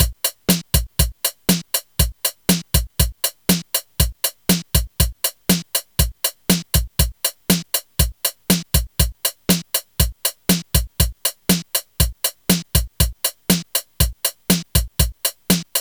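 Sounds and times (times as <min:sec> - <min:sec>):
drum pattern: 0:00.0 - 0:15.7.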